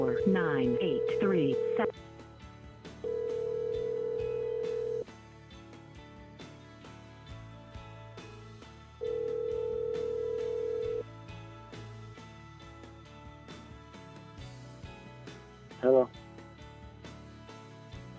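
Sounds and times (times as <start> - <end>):
long electronic tones from an automatic voicemail system over a phone line: 0.0 - 1.9, 3.1 - 5.0, 9.0 - 11.0
speech: 0.1 - 0.9, 1.8 - 2.1.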